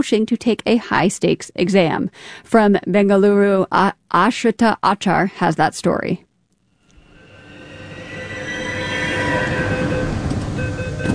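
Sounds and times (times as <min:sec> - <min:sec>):
speech: 0:00.0 - 0:06.3
metro train arriving at a station in Bengaluru: 0:06.9 - 0:11.1.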